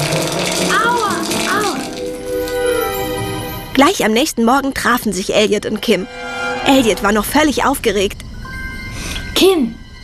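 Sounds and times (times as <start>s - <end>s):
hard hail pelting down inside a shower: 0.0s - 2.6s
shower water spraying: 0.0s - 3.1s
speech: 3.8s - 8.2s, 9.4s - 9.8s.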